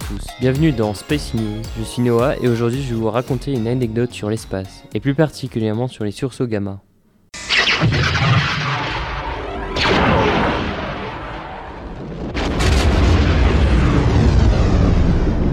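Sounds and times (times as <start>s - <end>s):
speech: 0.1s - 6.9s, 7.8s - 8.1s
science-fiction superlaser blast from a space station weapon: 7.4s - 15.5s.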